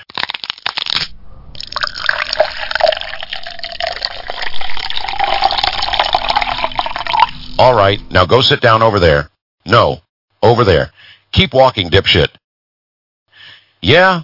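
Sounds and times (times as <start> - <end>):
Canadian whiskey pouring into a tall glass without ice: 1.6 - 7.6
speech: 7.6 - 12.4, 13.8 - 14.2.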